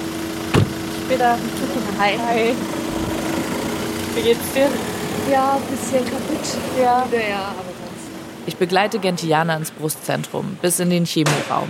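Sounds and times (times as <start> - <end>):
car engine idling with a steady low hum: 0.0 - 9.4
short thump: 0.5 - 0.8
speech: 1.1 - 2.8, 4.2 - 7.7, 8.5 - 11.6.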